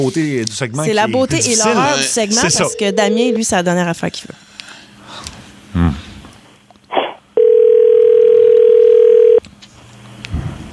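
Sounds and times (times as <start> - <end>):
speech: 0.0 - 4.4
telephone dial tone: 7.4 - 9.4.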